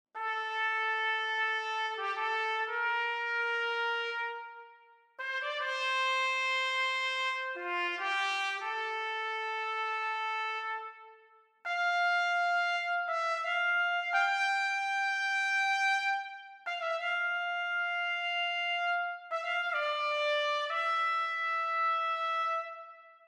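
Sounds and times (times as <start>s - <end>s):
solo trumpet in a modern mix: 0.2s - 23.2s.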